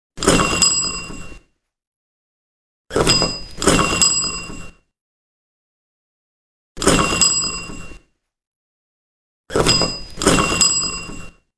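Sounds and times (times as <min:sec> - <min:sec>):
old doorbell: 0:00.3 - 0:01.5, 0:03.0 - 0:04.8, 0:07.0 - 0:08.0, 0:09.6 - 0:11.5.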